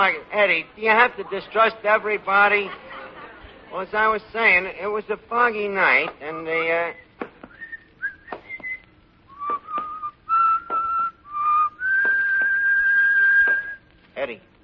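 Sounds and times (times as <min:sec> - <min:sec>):
speech: 0:00.0 - 0:02.9, 0:03.7 - 0:07.0, 0:14.2 - 0:14.5
man whistling a song: 0:07.0 - 0:13.8.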